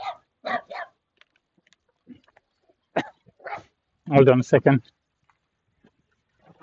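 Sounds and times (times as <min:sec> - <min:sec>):
small dog barking while running in front of a car: 0:00.0 - 0:01.0, 0:03.4 - 0:03.7
speech: 0:04.1 - 0:05.0.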